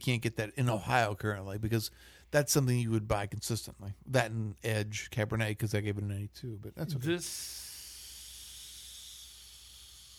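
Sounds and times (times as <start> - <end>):
speech: 0.0 - 7.7
steam hissing: 7.3 - 10.1.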